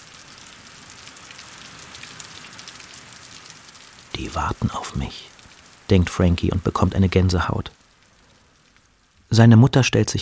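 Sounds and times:
heavy dense rain pouring: 0.0 - 10.2
speech: 4.2 - 5.3, 5.9 - 7.8, 9.3 - 10.2.

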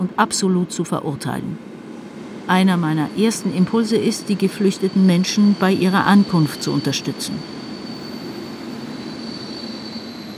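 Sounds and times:
speech: 0.0 - 1.8, 2.5 - 7.6
rumble of rail cars at a train station in Hamburg: 0.0 - 10.3
thin high-pitched rail car wheel squeal: 4.4 - 10.3.

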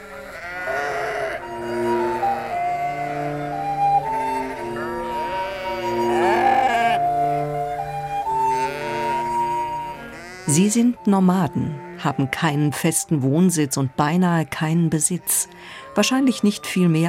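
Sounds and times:
flock of sheep bleating: 0.0 - 3.6, 4.3 - 7.6, 8.5 - 10.7, 15.0 - 16.5
speech: 10.6 - 17.0.

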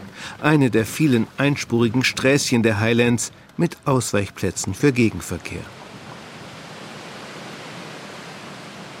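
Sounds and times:
speech: 0.4 - 5.8
waterfall roaring on the south shore of Loch Arkaik in the Scottish Highlands: 5.1 - 8.9.

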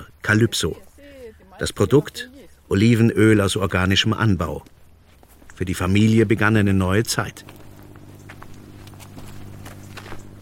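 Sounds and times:
steady noise: 0.0 - 10.4
speech: 0.3 - 0.9, 1.6 - 4.8, 5.6 - 7.6
footsteps of people walking cross-country over open terrain on an olive farm: 2.5 - 10.4.

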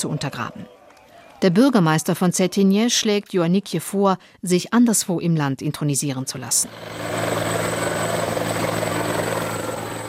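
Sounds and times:
speech: 0.0 - 0.8, 1.4 - 7.4
helicopter flying overhead to Cetinje Montenegro: 6.4 - 10.0.

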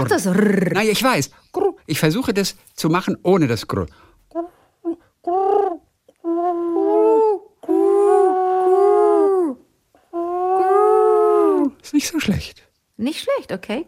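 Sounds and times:
person imitating pigeon cooing: 0.0 - 1.0, 4.3 - 11.8
speech: 0.0 - 7.4, 11.9 - 13.8.

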